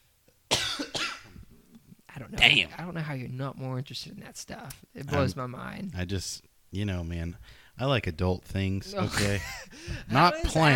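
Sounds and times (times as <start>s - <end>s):
person coughing: 0.5s - 1.4s
speech: 2.3s - 10.7s.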